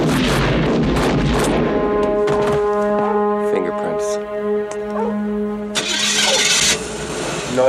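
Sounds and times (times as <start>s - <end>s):
pistol gunshot in a film scene: 0.0s - 2.6s
steady rising tone: 1.8s - 7.6s.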